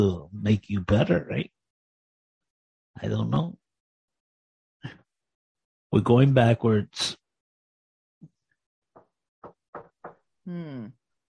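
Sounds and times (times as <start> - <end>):
speech: 0.0 - 1.5, 3.0 - 3.6, 5.9 - 7.2, 10.4 - 11.0
sharp knocks on a door: 9.0 - 10.3.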